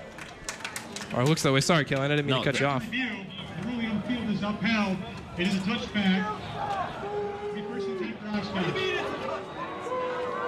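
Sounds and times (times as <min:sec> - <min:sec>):
speech: 0:01.1 - 0:03.3, 0:04.4 - 0:09.2
large home football crowd jeering and booing after a review: 0:02.8 - 0:10.4.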